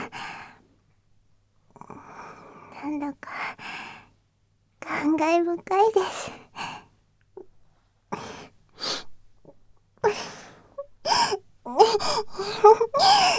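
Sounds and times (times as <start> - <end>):
speech: 2.8 - 3.7, 5.0 - 6.4, 12.0 - 13.3
person crying for joy with gasping sobs and wailing cries: 10.1 - 13.3.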